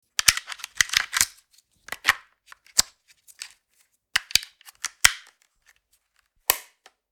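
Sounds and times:
TV remote control battery being changed: 0:00.2 - 0:03.6, 0:04.2 - 0:05.3.

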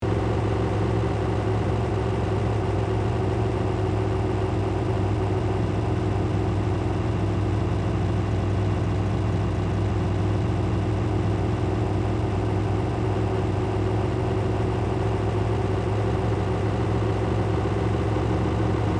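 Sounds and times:
industrial semi truck engine idling: 0:00.0 - 0:18.9.

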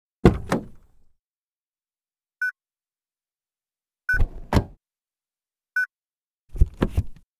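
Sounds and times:
car interior door: 0:00.2 - 0:00.8, 0:04.2 - 0:04.8.

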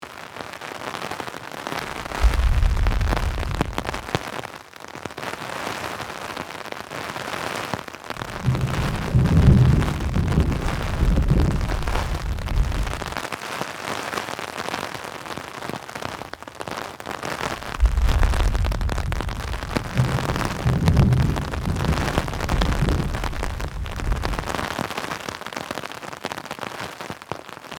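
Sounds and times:
rain on umbrella: 0:00.0 - 0:27.7
thunder: 0:01.8 - 0:04.2, 0:08.2 - 0:13.2, 0:17.4 - 0:24.9.

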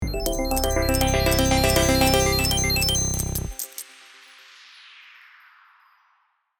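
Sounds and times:
casino slot machine reel start: 0:00.0 - 0:03.8.

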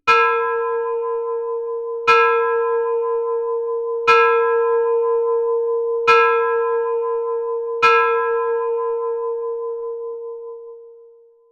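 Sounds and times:
church bells ringing: 0:00.1 - 0:11.4.

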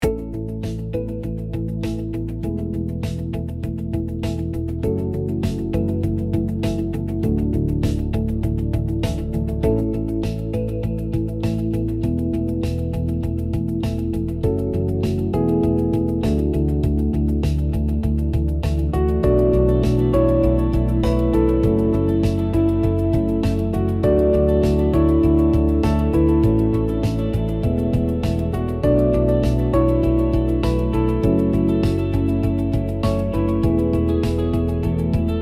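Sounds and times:
positive corporate music: 0:00.0 - 0:35.4.

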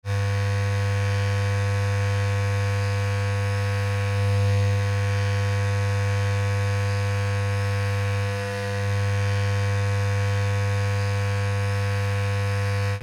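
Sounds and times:
electric hair trimmer buzzing: 0:00.1 - 0:13.0.

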